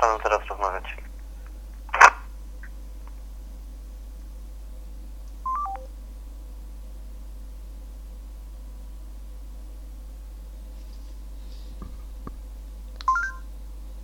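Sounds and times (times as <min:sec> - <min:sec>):
steady low hum: 0:00.0 - 0:14.0
speech: 0:00.2 - 0:01.1
telephone keypad tones: 0:05.5 - 0:05.9, 0:13.0 - 0:13.4.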